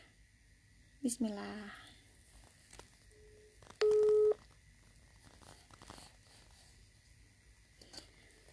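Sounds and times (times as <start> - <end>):
speech: 1.0 - 1.9
telephone call dialling tone: 3.8 - 4.4.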